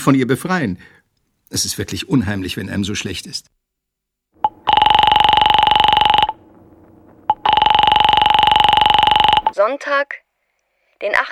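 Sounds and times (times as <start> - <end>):
speech: 0.0 - 3.6, 9.6 - 10.2, 11.0 - 11.3
telephone ringing in long electronic bursts: 4.4 - 9.6.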